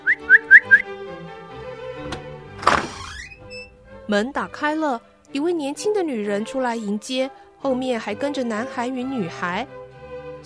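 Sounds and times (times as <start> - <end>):
person whistling short rising notes to call out after reining in a horse: 0.0 - 0.9
speech: 4.1 - 9.8.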